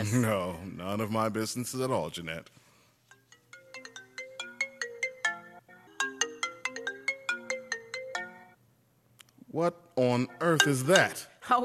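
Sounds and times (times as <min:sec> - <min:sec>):
speech: 0:00.0 - 0:02.7, 0:09.5 - 0:11.6
melodic cell phone ringtone through car speakers: 0:03.1 - 0:08.6, 0:10.2 - 0:11.4.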